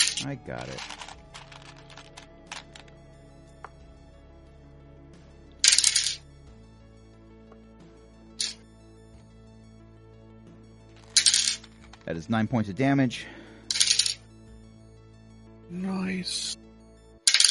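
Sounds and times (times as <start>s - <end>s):
four-sided dice clattering in a dice tray: 0.0s - 2.9s, 5.6s - 6.2s, 11.0s - 12.0s, 13.7s - 14.2s, 17.3s - 17.4s
speech: 0.2s - 1.1s, 12.1s - 13.4s, 15.7s - 16.6s.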